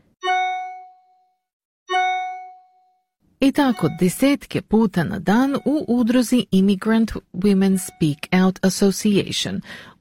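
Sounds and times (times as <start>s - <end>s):
new email message notification chime: 0.2s - 1.3s, 1.9s - 3.0s, 3.6s - 4.2s
speech: 3.4s - 9.9s.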